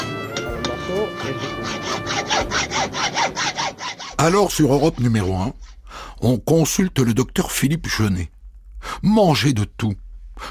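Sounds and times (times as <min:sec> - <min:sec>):
hand saw cutting through wood in back-and-forth strokes: 0:00.0 - 0:05.3
speech: 0:04.2 - 0:10.4.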